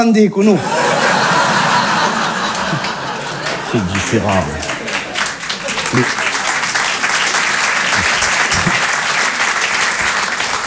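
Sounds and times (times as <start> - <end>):
speech: 0.0 - 0.8, 3.7 - 4.7, 5.9 - 6.2
laughter: 0.5 - 10.6
crowd applauding: 0.6 - 10.6.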